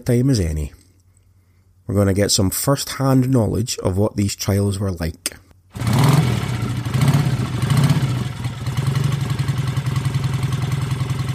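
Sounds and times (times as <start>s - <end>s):
speech: 0.0s - 0.8s, 1.9s - 5.9s
packed motorcycle engine revving before setting off: 5.7s - 11.3s.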